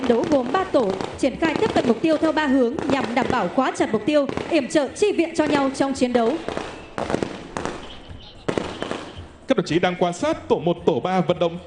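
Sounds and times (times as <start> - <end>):
covering gunfire during a military assault drill: 0.0 - 9.2
speech: 0.1 - 7.2, 9.5 - 11.6.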